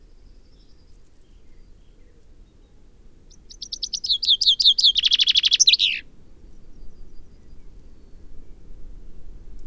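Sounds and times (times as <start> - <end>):
Common Chaffinch Fringilla coelebs singing: 3.3 - 6.0.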